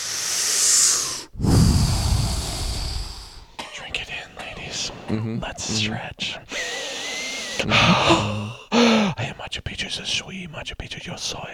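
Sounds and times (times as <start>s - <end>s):
breathy airy exhale: 0.0s - 3.6s, 6.5s - 9.2s
long exaggerated inhale through the nose: 0.0s - 3.6s, 6.5s - 9.2s
speech: 5.1s - 6.5s, 7.6s - 8.5s, 9.5s - 11.5s.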